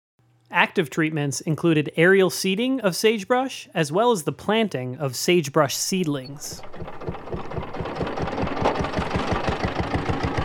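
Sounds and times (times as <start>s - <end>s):
speech: 0.5s - 7.0s
tractor engine chugging at idle: 6.3s - 10.4s.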